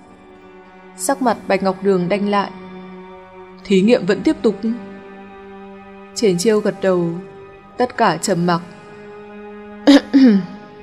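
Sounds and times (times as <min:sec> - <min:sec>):
speech: 0:01.0 - 0:02.6, 0:03.6 - 0:04.9, 0:06.2 - 0:08.8, 0:10.2 - 0:10.5
person clearing throat: 0:09.9 - 0:10.6.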